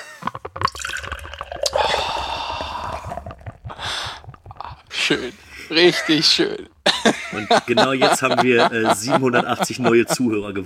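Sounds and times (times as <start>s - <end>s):
beer poured from an unwieldy bottle: 0.0s - 5.3s
breathy hiss: 1.4s - 5.8s
speech: 5.1s - 6.7s, 7.4s - 10.6s
laughter: 5.7s - 10.5s.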